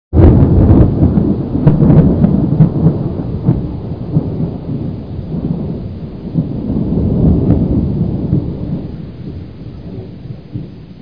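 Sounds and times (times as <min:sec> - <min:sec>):
storm: 0:00.1 - 0:11.0.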